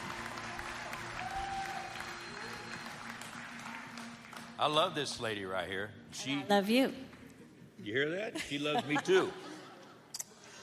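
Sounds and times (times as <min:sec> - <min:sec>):
audience applause at a Christmas gathering: 0:00.0 - 0:05.0
speech: 0:04.6 - 0:07.2, 0:07.8 - 0:09.5
laughter: 0:08.2 - 0:10.6.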